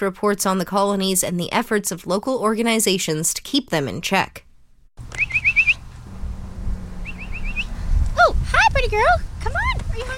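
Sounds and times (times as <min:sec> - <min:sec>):
speech: 0:00.0 - 0:04.4, 0:08.8 - 0:10.1
low outdoor rumble of traffic: 0:05.0 - 0:10.1
person whistling rising chirps to call cats: 0:05.1 - 0:05.8, 0:07.0 - 0:07.8.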